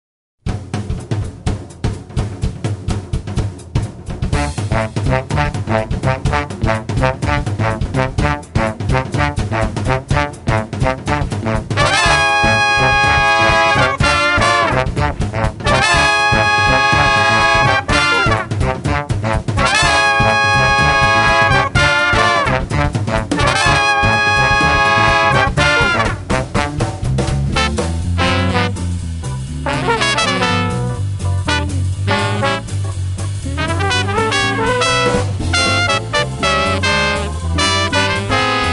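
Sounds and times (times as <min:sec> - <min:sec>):
big band music: 0:00.5 - 0:38.7.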